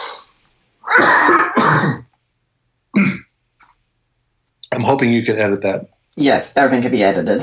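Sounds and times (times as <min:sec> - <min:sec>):
harsh coughing: 0:00.8 - 0:02.2, 0:02.9 - 0:03.4
throat clearing: 0:00.9 - 0:02.2, 0:02.9 - 0:03.3
speech: 0:04.9 - 0:07.4.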